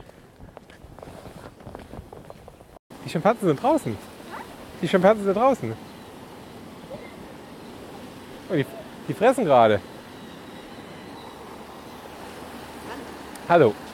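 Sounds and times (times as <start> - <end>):
water bubblers churning a moat: 2.9 - 13.9
speech: 3.1 - 4.1, 4.8 - 5.9, 8.5 - 9.9, 13.5 - 13.8.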